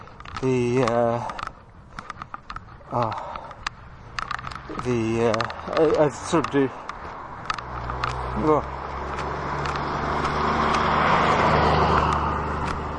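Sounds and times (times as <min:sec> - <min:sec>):
road noise of passing truck: 0:00.0 - 0:12.9
sharp clicks: 0:00.0 - 0:12.9
speech: 0:00.4 - 0:01.4, 0:02.9 - 0:03.3, 0:04.7 - 0:06.8, 0:08.4 - 0:08.8
large truck engine roar: 0:04.6 - 0:12.9.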